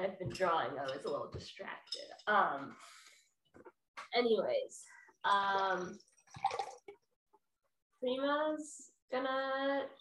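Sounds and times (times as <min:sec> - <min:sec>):
speech: 0:00.0 - 0:03.0, 0:03.6 - 0:06.9, 0:08.0 - 0:10.0
alcohol pouring into a glass: 0:06.0 - 0:07.0.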